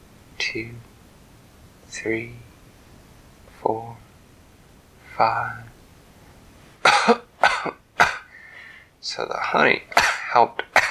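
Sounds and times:
speech: 0.5s - 0.9s, 1.9s - 2.5s, 3.7s - 4.0s, 5.2s - 5.8s, 9.0s - 10.7s
sick young girl coughing: 6.8s - 8.3s.

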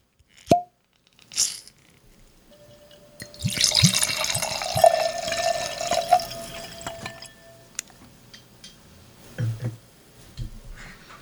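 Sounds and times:
light glass clinks: 2.5s - 7.8s
drink pouring into a glass: 2.7s - 7.4s
trailing drips: 3.2s - 7.4s.

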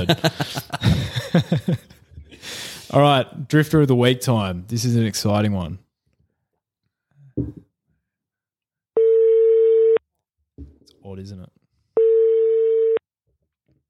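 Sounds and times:
speech: 0.0s - 0.6s, 2.9s - 5.8s, 11.1s - 11.5s
laughter: 0.0s - 2.3s
outgoing phone call ringing tone: 9.0s - 10.0s, 12.0s - 13.0s.

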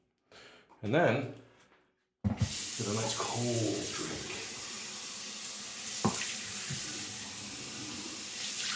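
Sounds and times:
speech: 0.8s - 1.4s, 2.8s - 4.3s
shower water running: 2.4s - 8.7s.

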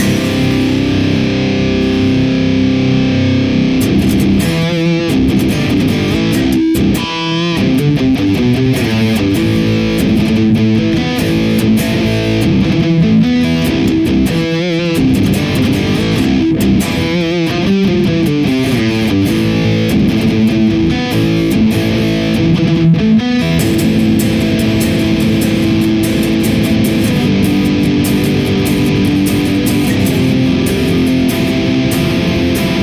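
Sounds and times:
heavily distorted electric guitar riff through amp plugin with blended impulse response: 0.0s - 32.8s.

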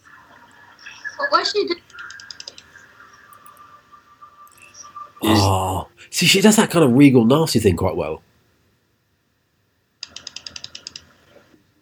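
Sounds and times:
speech: 1.2s - 1.9s, 5.2s - 8.3s
typing on a computer keyboard: 10.0s - 11.1s.

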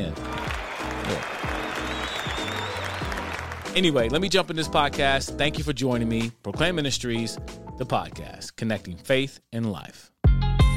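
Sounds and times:
applause: 0.0s - 4.0s
speech: 1.1s - 1.4s, 3.7s - 10.1s.

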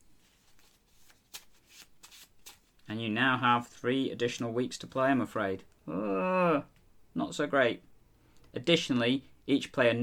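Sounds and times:
deck of board-game cards shuffling: 0.2s - 2.9s
speech: 2.9s - 7.9s, 8.5s - 10.0s.

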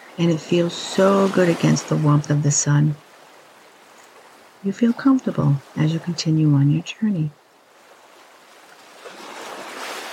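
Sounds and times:
ocean waves washing onto the shore: 0.0s - 10.1s
soft breeze: 0.0s - 10.1s
speech: 0.2s - 3.0s, 4.6s - 7.4s.

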